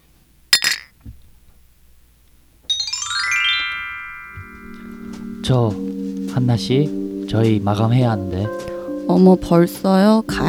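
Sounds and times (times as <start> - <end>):
bright sustained glassy ring of cocktail glasses: 2.7 - 5.2
speech: 5.5 - 10.4.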